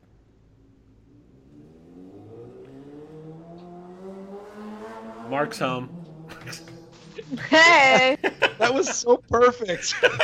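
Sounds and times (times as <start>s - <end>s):
motorcycle engine revving while accelerating: 0.3s - 7.6s
speech: 5.3s - 10.2s
laughter: 6.3s - 10.2s.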